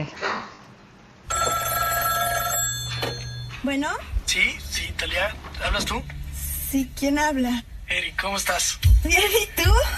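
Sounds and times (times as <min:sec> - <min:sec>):
telephone ringing in a played song: 0:01.3 - 0:03.6
speech: 0:03.6 - 0:09.9.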